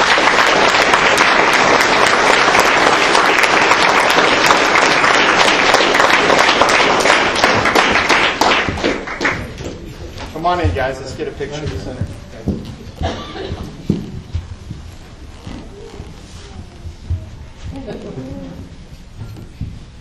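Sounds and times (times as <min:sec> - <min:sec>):
sustained applause from a large audience: 0:00.0 - 0:09.8
speech: 0:10.5 - 0:12.6.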